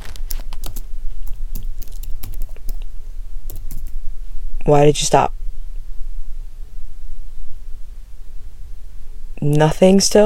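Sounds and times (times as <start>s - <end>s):
rapid keyboard typing: 0.0s - 2.9s, 3.5s - 4.0s
speech: 4.7s - 5.4s, 9.4s - 10.2s.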